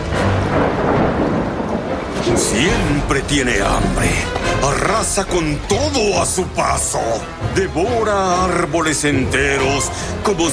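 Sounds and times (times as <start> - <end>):
loud rolling thunder: 0.0 - 5.7
steady hiss of rain: 0.0 - 7.5
speech: 2.4 - 10.5.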